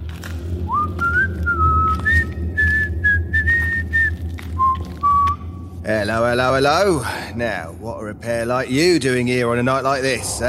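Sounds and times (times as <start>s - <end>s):
low rumbling background: 0.0s - 10.4s
person whistling a cheerful old-fashioned tune: 0.7s - 5.4s
speech: 6.0s - 10.4s.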